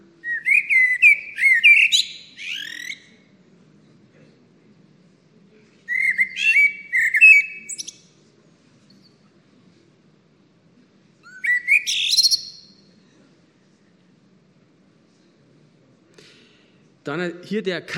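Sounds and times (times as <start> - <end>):
faint hum: 0.0 - 17.9
Eurasian blackbird singing: 0.2 - 3.1, 5.9 - 8.0, 11.2 - 12.8
speech: 17.1 - 17.9.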